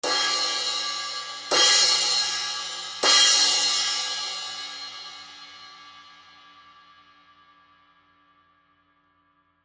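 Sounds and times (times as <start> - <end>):
Zildjian heavy crash cymbal hits: 0.0 - 6.0.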